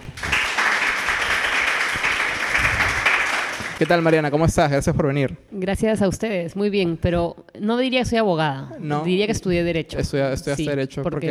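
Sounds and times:
sustained audience applause with many hands clapping: 0:00.0 - 0:04.4
speech: 0:03.8 - 0:11.3.

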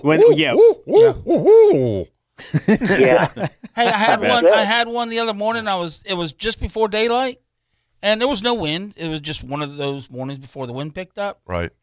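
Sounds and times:
person imitating owl hooting calls to call owls in: 0:00.0 - 0:02.2
speech: 0:00.0 - 0:07.4, 0:08.0 - 0:11.8
laughter: 0:02.4 - 0:04.7.

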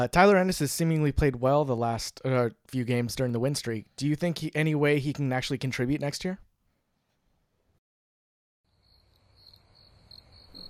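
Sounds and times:
speech: 0:00.0 - 0:06.4
crickets chirping in a high-pitched trill: 0:08.7 - 0:10.6.

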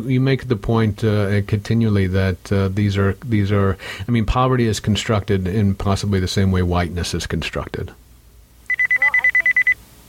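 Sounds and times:
speech: 0:00.0 - 0:08.0
phone low-battery warning beep: 0:08.7 - 0:09.8.

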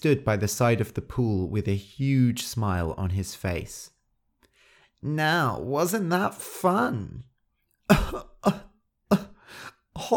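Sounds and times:
speech: 0:00.0 - 0:04.0, 0:05.0 - 0:07.3, 0:07.9 - 0:10.1
harsh coughing bringing up water after nearly drowning in a pool: 0:07.9 - 0:09.4.

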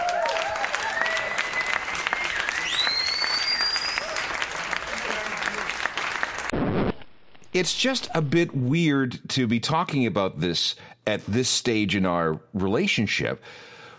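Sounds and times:
crowd clapping: 0:00.0 - 0:06.6
sharp whistles: 0:01.0 - 0:04.1
speech: 0:07.6 - 0:13.7.

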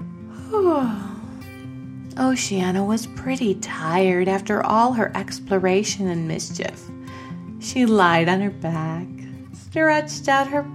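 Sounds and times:
soft steady music: 0:00.0 - 0:10.7
narrator's voice imitating a yawn: 0:00.3 - 0:01.4
speech: 0:02.2 - 0:07.0, 0:07.6 - 0:10.7.

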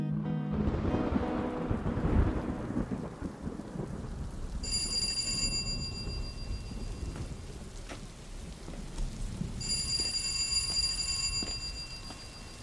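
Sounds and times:
deep rumbles of thunder: 0:00.1 - 0:10.5
heavy rain pouring: 0:00.1 - 0:12.6
faint electronic ringing tone: 0:04.7 - 0:07.3, 0:09.6 - 0:12.6.

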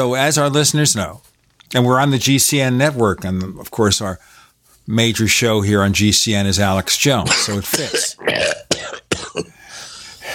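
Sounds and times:
speech: 0:00.0 - 0:08.6, 0:09.4 - 0:09.6
breathy noise: 0:04.2 - 0:04.9, 0:09.4 - 0:10.3
person coughing: 0:07.3 - 0:09.6.

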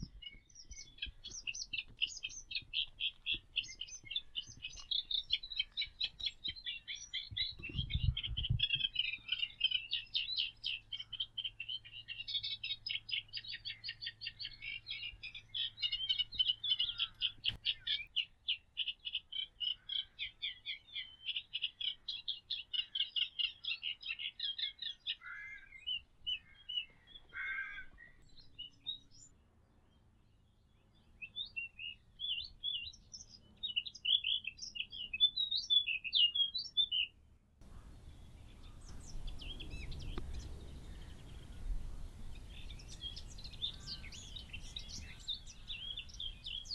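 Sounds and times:
birds calling and chirping: 0:00.0 - 0:46.7
reed warbler singing: 0:00.0 - 0:46.7
faint low rumble: 0:37.6 - 0:44.3.

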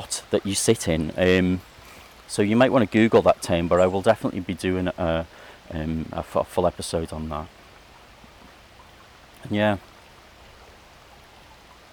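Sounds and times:
gentle flowing water: 0:00.0 - 0:11.9
speech: 0:00.3 - 0:01.7, 0:02.3 - 0:07.6, 0:09.4 - 0:09.9.

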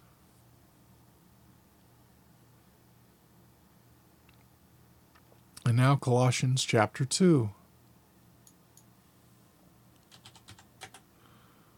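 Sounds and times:
low steady hum: 0:00.0 - 0:11.7
speech: 0:05.7 - 0:07.6
keys clacking on a computer keyboard: 0:10.0 - 0:11.1.

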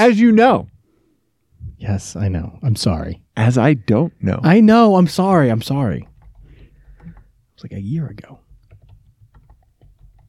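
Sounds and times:
speech: 0:00.0 - 0:00.7, 0:01.8 - 0:06.1, 0:07.6 - 0:08.4
computer keyboard typing: 0:06.0 - 0:07.3, 0:08.2 - 0:10.2.

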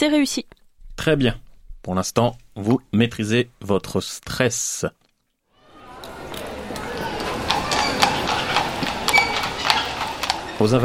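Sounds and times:
speech: 0:00.0 - 0:05.0, 0:10.6 - 0:10.8
horse hooves clip-clopping on a hard street: 0:06.0 - 0:10.8.

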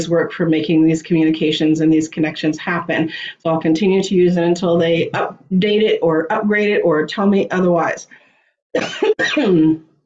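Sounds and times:
speech: 0:00.0 - 0:09.9
person clearing throat: 0:08.8 - 0:09.6
person coughing: 0:08.8 - 0:09.6.

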